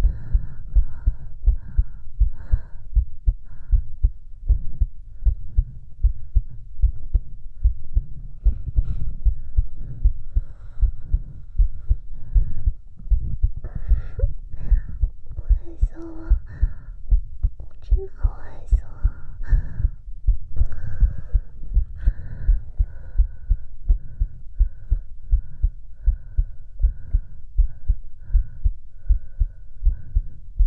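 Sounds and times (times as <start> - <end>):
faint hum: 0.0 - 30.6
rapid heartbeat: 0.0 - 30.6.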